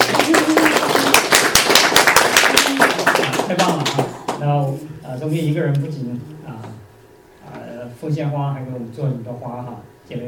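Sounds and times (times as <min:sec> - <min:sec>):
small crowd clapping: 0:00.0 - 0:04.4
speech: 0:03.5 - 0:06.8, 0:07.9 - 0:10.2.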